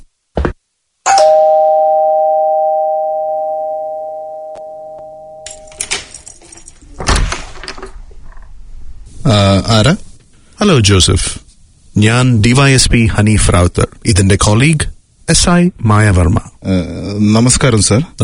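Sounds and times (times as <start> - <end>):
electronic doorbell tone at a flat door: 1.1 - 5.8
rustling and shuffling: 5.5 - 10.6
speech: 9.3 - 11.4, 12.0 - 18.2.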